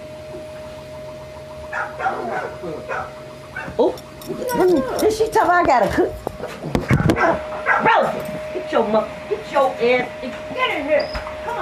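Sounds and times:
steady hum: 0:00.0 - 0:11.6
dog barking: 0:01.7 - 0:03.8, 0:06.9 - 0:08.2
speech: 0:01.8 - 0:11.6.

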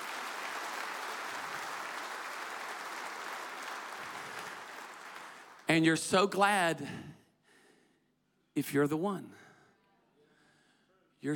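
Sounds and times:
large crowd clapping: 0:00.0 - 0:05.8
speech: 0:05.7 - 0:07.1, 0:08.6 - 0:09.4.

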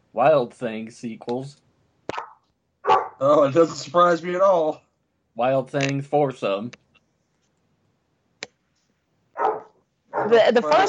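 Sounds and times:
speech: 0:00.2 - 0:01.6, 0:03.2 - 0:04.8, 0:05.4 - 0:06.8, 0:10.2 - 0:10.8
dog barking at a squeaky toy: 0:02.1 - 0:03.2, 0:09.3 - 0:10.8.

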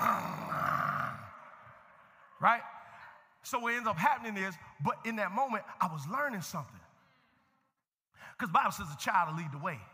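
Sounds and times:
boy roaring in imitation of a big animal: 0:00.0 - 0:01.3
speech: 0:02.4 - 0:02.8, 0:03.4 - 0:06.8, 0:08.4 - 0:09.9.

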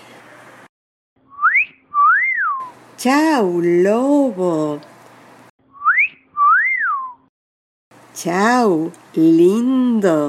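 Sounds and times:
catcall wolf whistle at a passerby: 0:01.3 - 0:02.8, 0:05.7 - 0:07.3
speech: 0:03.0 - 0:04.9, 0:08.2 - 0:10.2.

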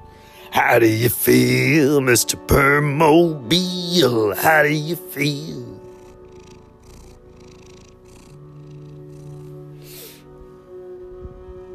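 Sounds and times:
speech: 0:00.6 - 0:05.8
cat purring: 0:03.6 - 0:10.2.

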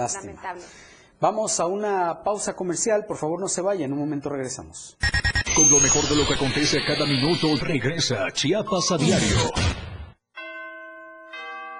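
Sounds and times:
speech: 0:00.0 - 0:09.8
noisy burst: 0:05.0 - 0:10.1
Christmas bells ringing: 0:10.3 - 0:11.7.

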